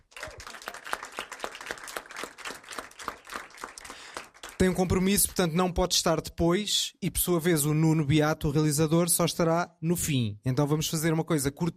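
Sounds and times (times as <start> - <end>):
audience applause: 0.0 - 4.8
speech: 4.6 - 11.7.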